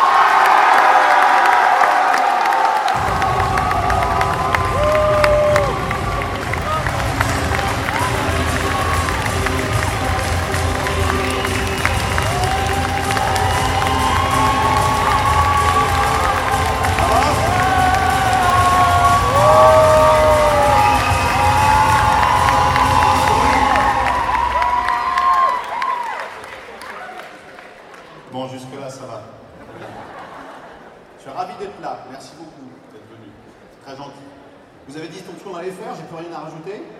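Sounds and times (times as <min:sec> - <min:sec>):
crowd at an event inauguration clapping: 0:00.0 - 0:28.3
laughter: 0:29.5 - 0:31.1.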